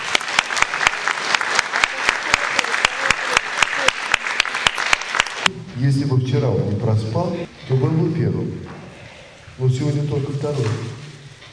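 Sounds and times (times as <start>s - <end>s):
audience applause at a competition event: 0.0s - 5.5s
speech: 5.8s - 8.7s, 9.6s - 10.9s.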